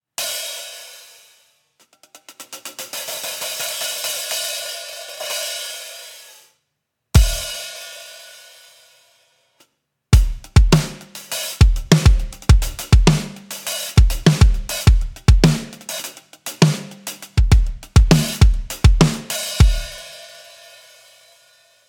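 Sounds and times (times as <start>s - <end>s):
Sabian 14 inch hi-hat, frequency reduced: 10.2s - 20.5s.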